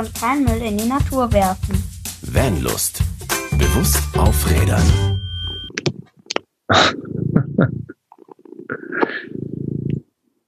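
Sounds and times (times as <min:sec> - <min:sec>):
speech: 0:00.0 - 0:05.3, 0:06.7 - 0:07.0
cat purring on a lap: 0:06.9 - 0:10.2.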